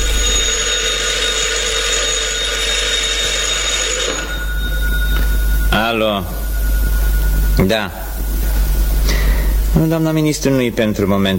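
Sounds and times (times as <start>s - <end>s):
telephone bell ringing with a harsh metallic jangle: 0.0s - 9.0s
speech: 6.0s - 6.4s, 7.6s - 8.0s, 9.8s - 11.3s.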